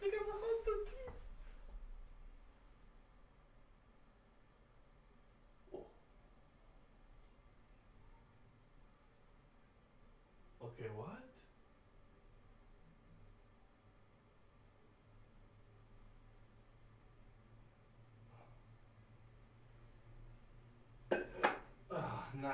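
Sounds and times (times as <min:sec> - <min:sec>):
low steady hum: 0:00.0 - 0:22.5
glass put down over an insect on a hard surface: 0:21.1 - 0:21.7.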